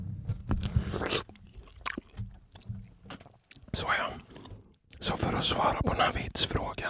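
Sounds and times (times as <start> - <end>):
peach being bitten and chewed: 0.4 - 5.2
speech: 3.8 - 4.2, 5.0 - 6.8.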